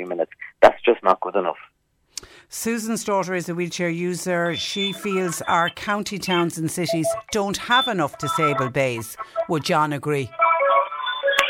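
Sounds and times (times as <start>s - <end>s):
speech: 0.0s - 1.7s, 2.5s - 10.4s
telephone ringing over a phone line: 3.0s - 11.4s.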